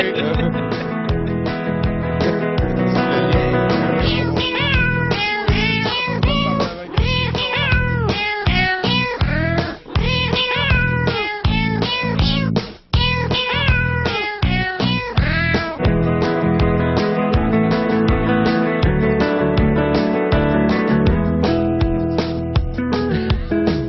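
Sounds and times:
loud dense music backing with a regular low beat: 0:00.0 - 0:23.8
cat meowing: 0:04.0 - 0:15.8.

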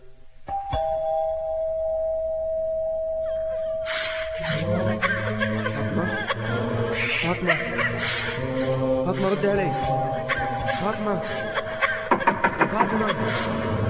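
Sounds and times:
doorbell ringing with electronic chime tones: 0:00.5 - 0:04.4, 0:09.6 - 0:11.2
laughter: 0:04.4 - 0:13.8
speech: 0:09.2 - 0:11.6, 0:12.9 - 0:13.8.

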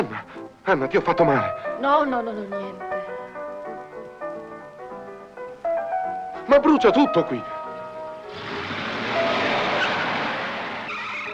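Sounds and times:
speech: 0:00.0 - 0:03.0, 0:06.5 - 0:07.6
car tires screeching while braking hard and skidding off the road: 0:08.3 - 0:11.3.

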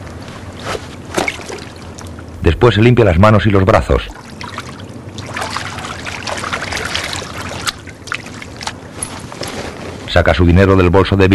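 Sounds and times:
low steady noise on a forest riverside: 0:00.0 - 0:11.3
cardigan thrown into river water from the bank: 0:00.6 - 0:02.0, 0:04.1 - 0:09.5
speech: 0:02.4 - 0:04.2, 0:10.2 - 0:11.3.

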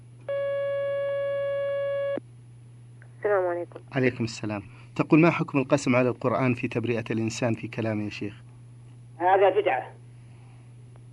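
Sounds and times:
telephone line tone as a caller is connected to a call-in line: 0:00.3 - 0:02.2
speech: 0:03.3 - 0:08.4, 0:09.2 - 0:10.0.

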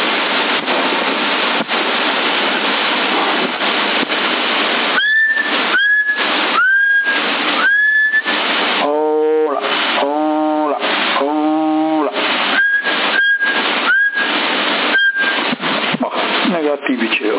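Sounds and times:
heavy constant CB radio hiss: 0:00.0 - 0:17.3
whistling into a CB radio microphone: 0:05.0 - 0:08.4, 0:12.5 - 0:15.4.

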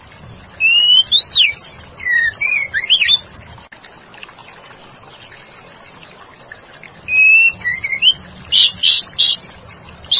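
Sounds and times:
white-rumped shama singing long whistle and fluty notes: 0:00.5 - 0:03.5, 0:07.0 - 0:10.1.

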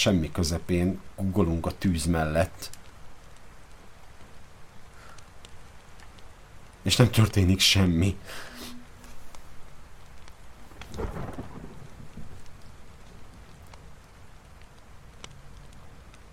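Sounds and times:
speech: 0:00.0 - 0:02.8, 0:06.8 - 0:08.5, 0:11.0 - 0:11.4
steady rain patter during a thunderstorm: 0:00.0 - 0:16.3
deep thunder rumble: 0:08.7 - 0:16.3.

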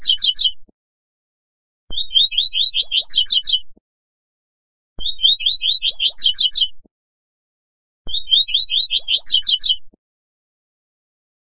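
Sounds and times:
Double-collared seedeater song: 0:00.0 - 0:00.7, 0:01.9 - 0:03.8, 0:05.0 - 0:06.9, 0:08.1 - 0:10.0.

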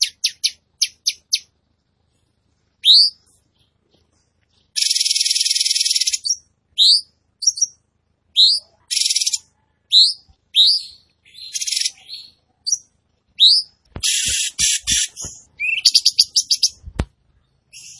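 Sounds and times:
tembakan bird singing buzzy trills and whistles: 0:02.8 - 0:03.3, 0:04.7 - 0:16.8, 0:17.6 - 0:17.9.

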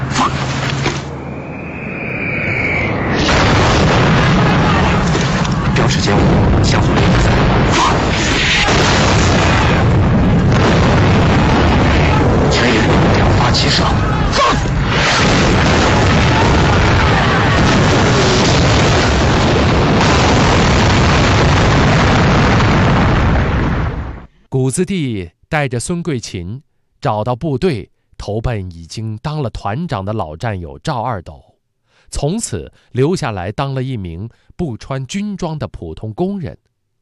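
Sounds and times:
artillery battalion shelling a bridge with heavy booms and explosions: 0:00.0 - 0:24.3
speech: 0:24.7 - 0:31.5, 0:32.1 - 0:36.7.

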